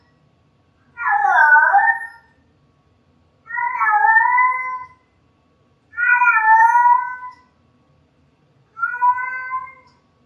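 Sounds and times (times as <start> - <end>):
cat meowing: 1.0 - 2.2, 3.5 - 4.9, 6.0 - 7.4, 8.8 - 9.9.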